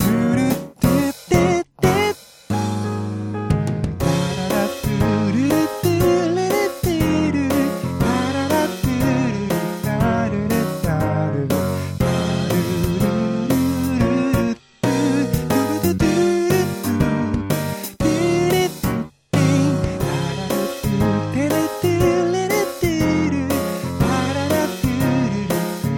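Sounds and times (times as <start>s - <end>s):
bass: 0.0s - 25.9s.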